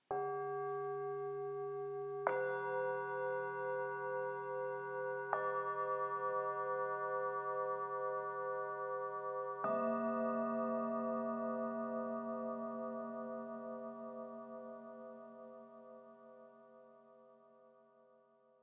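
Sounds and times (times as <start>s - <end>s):
Tibetan singing bowls alarm melody: 0.1s - 14.5s.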